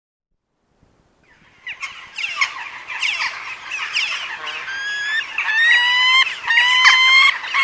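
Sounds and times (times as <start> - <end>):
peregrine falcon cackling and whining cries: 1.6 - 7.6.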